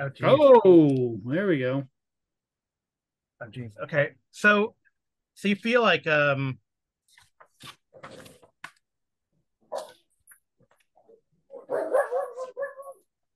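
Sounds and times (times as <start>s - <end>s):
speech: 0.0s - 1.9s, 3.4s - 4.8s, 5.4s - 6.6s
pet dog barking and yipping: 11.5s - 13.1s.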